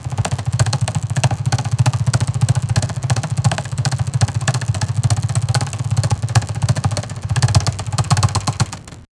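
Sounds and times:
rapid pedal sewing machine: 0.0 - 9.1.

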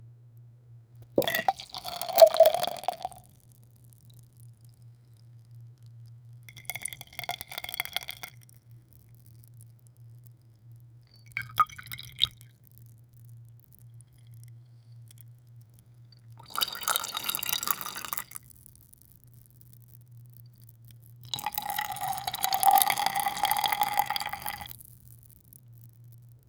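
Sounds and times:
whiskey pouring slowly: 1.0 - 3.2, 6.5 - 8.3, 11.2 - 12.4, 16.4 - 18.4, 21.3 - 24.8.

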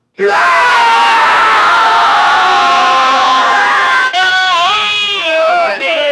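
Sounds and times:
live audience yelling: 0.2 - 6.0.

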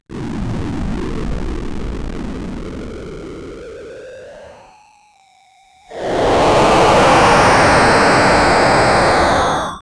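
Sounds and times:
weak mutated monster jump strained: 5.9 - 9.8.

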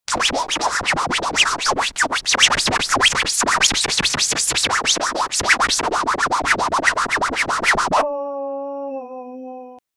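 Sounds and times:
DJ scratching: 0.1 - 8.0.

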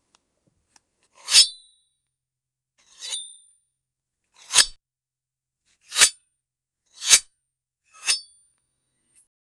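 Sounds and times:
sword being sheathed: 4.4 - 4.8, 5.9 - 6.2, 7.0 - 7.3.

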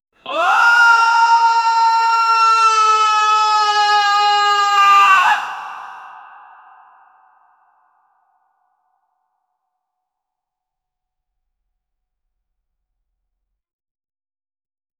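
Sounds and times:
man screaming with heavy growl: 0.3 - 7.2.

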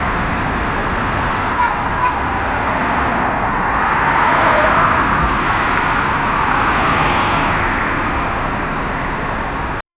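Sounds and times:
traffic noise: 0.0 - 9.8.

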